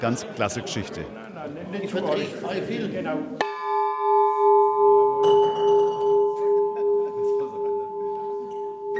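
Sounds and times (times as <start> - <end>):
speech: 0.0 - 3.5
restored 85 kg church bell ringing: 3.5 - 8.9.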